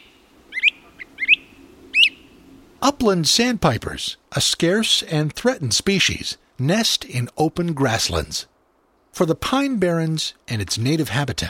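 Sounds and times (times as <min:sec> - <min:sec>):
prairie warblers trilling atop young pines: 0:00.0 - 0:02.4
great crested flycatchers calling overhead: 0:00.0 - 0:02.5
speech: 0:02.8 - 0:08.5, 0:09.2 - 0:11.4.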